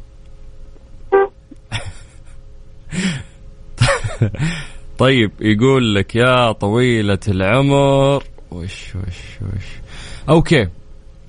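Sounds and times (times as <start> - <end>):
car horn honked by a woman driving: 1.2 - 1.4
speech: 4.2 - 10.8.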